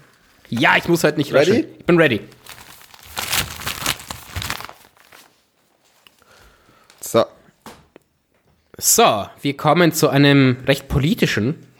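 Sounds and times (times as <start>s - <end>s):
speech: 0.5s - 2.4s, 7.1s - 7.4s, 8.8s - 11.7s
paper crumpling and rustling: 2.3s - 6.0s.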